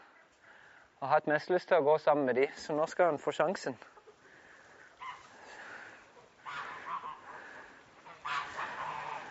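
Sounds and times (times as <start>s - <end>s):
speech: 1.0s - 4.0s
geese honking: 4.0s - 9.2s.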